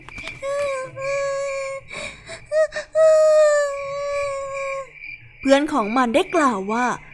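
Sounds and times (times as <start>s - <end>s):
short breathy sobs: 0.4s - 4.9s
whimpering wailing cries of a little blue bird with a broken wing: 0.4s - 4.9s
speech: 5.4s - 7.1s.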